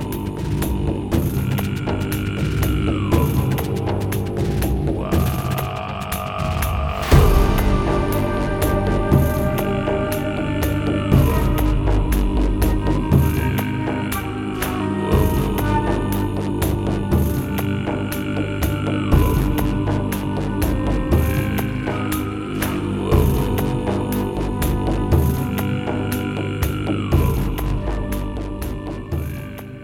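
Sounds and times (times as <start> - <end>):
meditative music with deep droning hums and sustained tones: 0.0 - 29.8.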